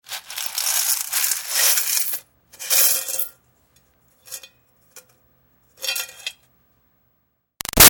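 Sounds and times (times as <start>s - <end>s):
coins dumped out of a metal bucket: 0.1s - 3.3s.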